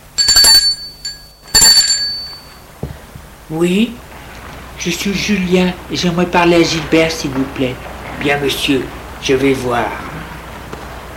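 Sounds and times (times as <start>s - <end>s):
intercom bell ringing at a door: 0.0s - 2.7s
speech: 3.5s - 4.0s, 4.8s - 10.0s.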